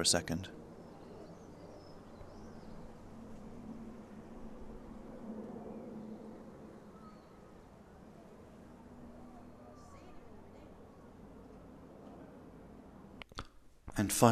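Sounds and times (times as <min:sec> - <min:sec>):
speech: 0:00.0 - 0:00.6, 0:14.0 - 0:14.3
bird chirping: 0:00.0 - 0:11.2
small light aircraft droning overhead outside the front of a house: 0:00.0 - 0:13.2.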